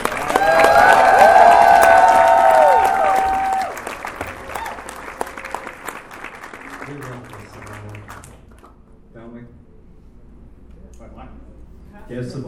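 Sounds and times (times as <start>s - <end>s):
audience cheering with whoops and shouting: 0.0s - 8.1s.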